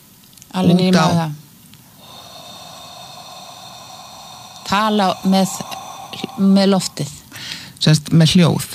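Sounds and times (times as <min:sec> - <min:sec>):
speech: 0:00.6 - 0:01.4, 0:04.7 - 0:08.7
long breath drawn in through the nose: 0:01.9 - 0:07.8.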